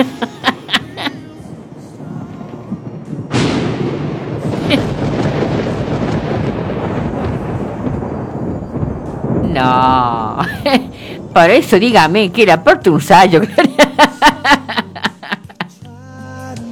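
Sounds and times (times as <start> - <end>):
laughter: 0.0 - 1.4, 4.6 - 5.0, 10.4 - 11.0, 13.4 - 15.8
loud thunderclap cracking: 0.0 - 15.3
sharp crackling bursts of lightning: 0.1 - 12.7
long heavy rumble of thunder: 0.8 - 12.6
speech: 11.4 - 13.7.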